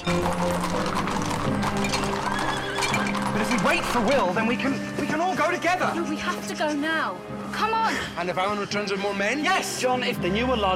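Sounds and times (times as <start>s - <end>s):
speech: 0.0s - 0.9s, 3.4s - 10.7s
horse hooves clip-clopping as riders set off: 0.0s - 6.8s.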